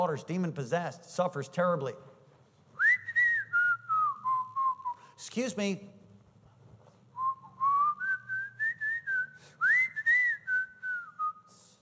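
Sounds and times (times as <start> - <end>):
speech: 0.0 - 2.1, 5.2 - 6.0
person whistling a tune: 2.8 - 5.1, 7.2 - 11.8.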